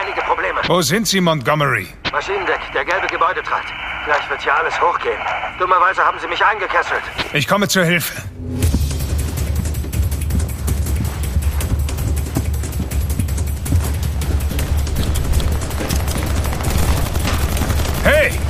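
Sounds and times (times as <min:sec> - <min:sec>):
speech: 0:00.7 - 0:08.5
heavy low rumble: 0:08.3 - 0:18.4
rapid gunshots: 0:09.0 - 0:18.4.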